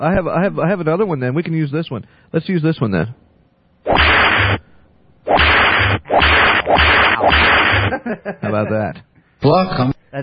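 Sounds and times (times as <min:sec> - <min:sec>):
speech: 0:00.0 - 0:04.0, 0:08.0 - 0:10.2
whip crack sound effect: 0:03.9 - 0:04.6, 0:05.3 - 0:07.9
laughter: 0:07.9 - 0:08.9.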